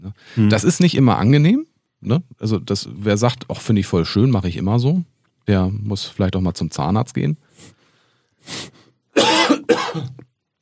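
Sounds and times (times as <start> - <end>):
speech: 0.2 - 7.8, 8.4 - 10.3
person coughing hoarsely: 9.2 - 10.2.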